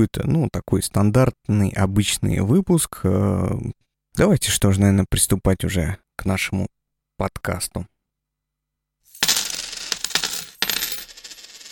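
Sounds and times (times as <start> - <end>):
speech: 0.0 - 7.9
coins clattering onto a hard surface: 9.1 - 11.6.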